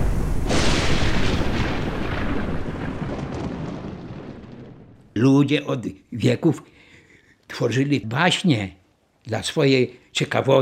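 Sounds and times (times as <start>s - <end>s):
thunder crack and rumble: 0.0s - 5.1s
speech: 5.2s - 6.8s, 7.5s - 10.5s.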